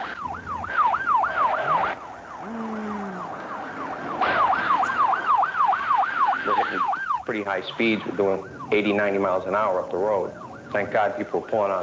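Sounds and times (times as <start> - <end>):
loud police car siren warbling during a chase: 0.0 - 11.8
rushing road and engine noise of a police car at 80 to 90 miles an hour: 0.0 - 11.8
speech: 7.3 - 11.8.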